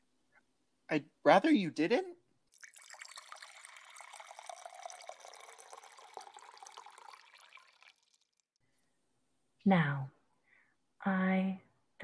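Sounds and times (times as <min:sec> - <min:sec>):
speech: 0:00.9 - 0:02.2, 0:09.7 - 0:10.2, 0:11.0 - 0:12.0
water pouring into a glass: 0:02.5 - 0:08.6.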